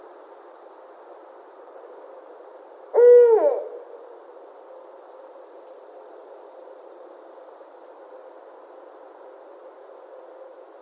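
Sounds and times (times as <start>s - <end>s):
barred owl hooting: 2.9s - 3.9s.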